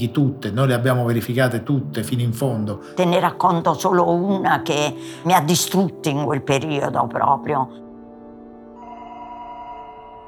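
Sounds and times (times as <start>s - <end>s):
speech: 0.0s - 7.8s
telephone ringing with an electronic trill: 8.8s - 10.2s.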